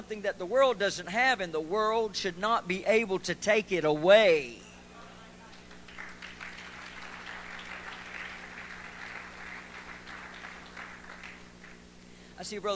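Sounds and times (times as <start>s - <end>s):
speech: 0.1s - 4.6s, 12.4s - 12.7s
hands clapping: 5.5s - 11.9s.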